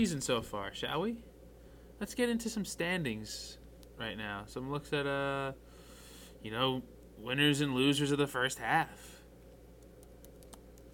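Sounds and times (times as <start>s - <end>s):
speech: 0.0s - 1.3s, 2.0s - 5.7s, 6.4s - 9.2s
low steady hum: 0.0s - 10.9s
computer keyboard typing: 9.8s - 10.9s.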